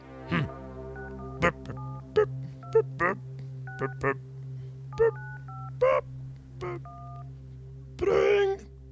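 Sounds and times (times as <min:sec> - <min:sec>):
steady low hum: 0:00.0 - 0:08.9
vocal murmurs: 0:00.2 - 0:07.3, 0:08.0 - 0:08.7
touch-tone phone keypad beeps as a number is dialed: 0:00.3 - 0:04.2, 0:04.9 - 0:06.0, 0:06.6 - 0:07.2
speech: 0:03.8 - 0:04.3.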